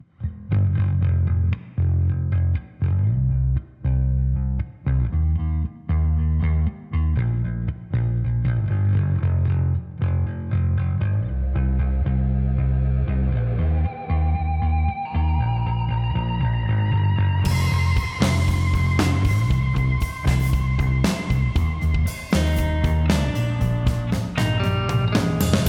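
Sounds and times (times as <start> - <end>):
bass: 0.0 - 25.6
organ: 13.6 - 25.6
drums: 17.4 - 25.6.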